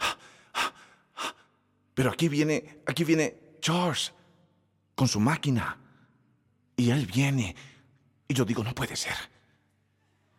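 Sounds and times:
person imitating heavy breathing: 0.0s - 1.8s
speech: 2.0s - 4.2s, 5.0s - 5.8s, 6.8s - 7.7s, 8.3s - 9.3s.

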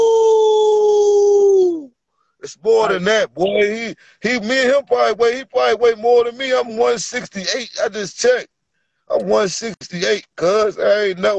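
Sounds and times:
human voice imitating a wolf howl: 0.0s - 1.9s
speech: 2.5s - 8.5s, 9.1s - 11.3s.

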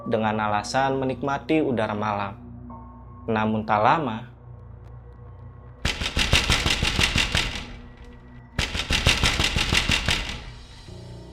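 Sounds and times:
speech: 0.0s - 2.4s, 3.2s - 4.3s
rapid sharp knocking on a glass door: 5.9s - 10.7s.

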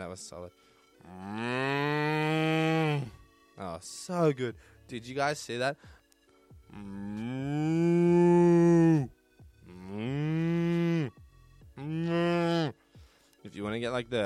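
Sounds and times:
speech: 0.0s - 6.0s, 6.7s - 8.2s, 13.6s - 14.2s
person imitating a cow mooing: 1.0s - 3.2s, 6.7s - 11.2s, 11.8s - 12.8s.

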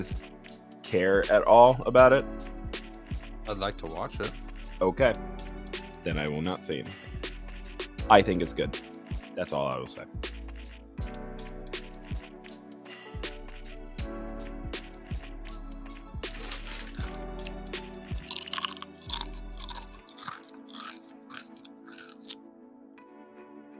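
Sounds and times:
speech: 0.0s - 0.3s, 0.9s - 2.5s, 3.5s - 7.2s, 8.1s - 10.3s
loud crunching and chewing of crisp food: 16.3s - 22.4s.

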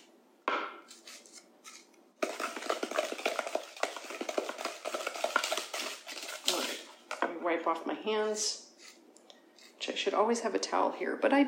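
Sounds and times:
spoon scraping down the sides of a mixing bowl: 0.9s - 6.9s, 8.7s - 9.0s
speech: 7.6s - 8.6s, 10.0s - 11.4s.

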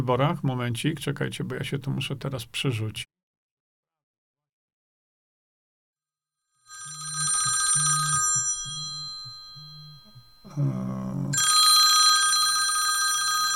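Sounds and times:
speech: 0.0s - 3.1s, 10.6s - 11.5s
telephone ringing: 6.7s - 10.5s, 11.4s - 13.5s.

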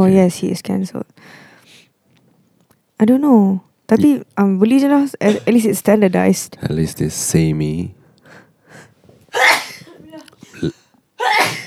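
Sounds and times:
speech: 0.0s - 1.4s, 3.0s - 8.0s, 10.6s - 10.8s
breathing: 1.2s - 2.0s, 8.0s - 9.2s
soft talking: 3.9s - 6.8s
loud breathy sneezes: 9.3s - 11.6s.

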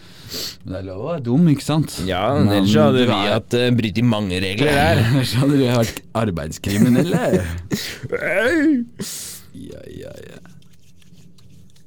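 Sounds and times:
speech: 0.6s - 10.5s
laughter: 4.6s - 6.0s, 6.7s - 8.8s
hands rubbing in alcohol hand sanitizer gel: 10.4s - 11.8s.

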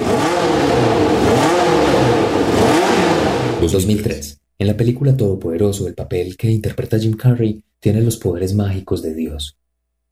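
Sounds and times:
1982 Formula 1 race car engine revving: 0.0s - 3.7s
speech: 3.6s - 9.6s.

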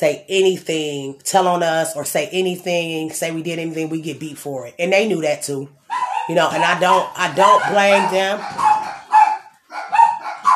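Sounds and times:
speech: 0.0s - 8.8s
dog barking: 5.9s - 10.5s.

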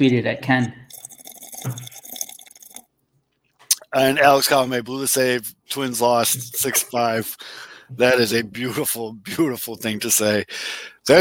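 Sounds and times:
speech: 0.0s - 0.9s, 1.6s - 1.9s, 3.9s - 11.1s
person slurping a drink with a soft wet gulp: 0.9s - 2.9s, 3.7s - 3.9s.

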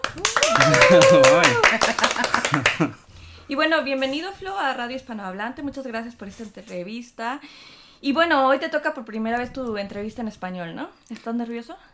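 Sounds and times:
a few hands clapping quickly: 0.0s - 3.0s
laughter: 0.5s - 3.0s
speech: 0.7s - 11.9s.

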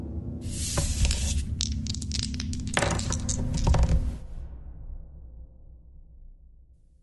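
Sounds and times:
dice rolled for a role-playing game clattering across a hard surface: 0.5s - 4.2s.

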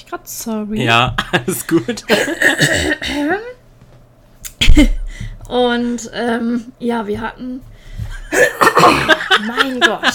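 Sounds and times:
speech: 0.1s - 3.5s, 4.8s - 7.7s, 8.3s - 10.1s
person clearing throat: 2.1s - 3.4s, 8.3s - 9.2s
laughter: 8.2s - 10.1s.

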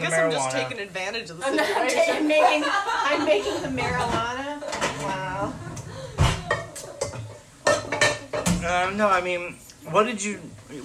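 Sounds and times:
speech: 0.0s - 4.5s, 8.7s - 10.8s
laughter: 1.4s - 4.9s
dishes and pots clattering: 3.8s - 8.8s.

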